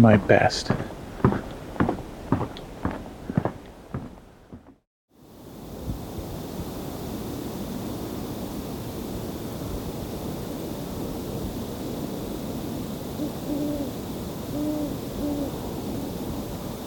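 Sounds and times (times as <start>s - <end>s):
speech: 0.0s - 0.9s
steady wash of wind-like noise: 0.0s - 16.8s
distant soft owl hoots: 13.2s - 16.4s.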